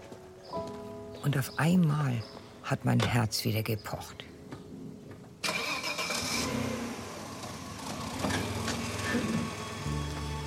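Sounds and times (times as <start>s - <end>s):
speech: 1.3s - 4.3s
car engine pulling away: 5.4s - 10.4s.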